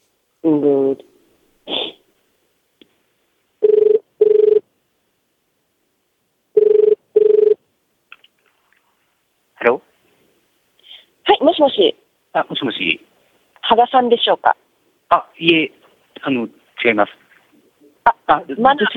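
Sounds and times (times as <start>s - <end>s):
speech: 0.4s - 1.1s, 11.7s - 13.1s, 13.7s - 17.2s, 18.3s - 18.9s
telephone ringback tone of a call dialed to Japan: 3.6s - 4.6s, 6.6s - 7.6s.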